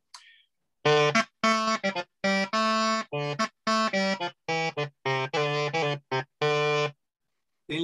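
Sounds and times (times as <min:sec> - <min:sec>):
crumhorn playing a short melody of detached notes: 0:00.8 - 0:07.0.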